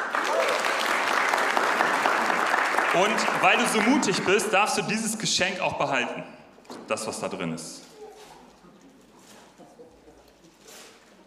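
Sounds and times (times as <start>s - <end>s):
crowd clapping: 0.0s - 4.8s
speech: 3.0s - 7.9s.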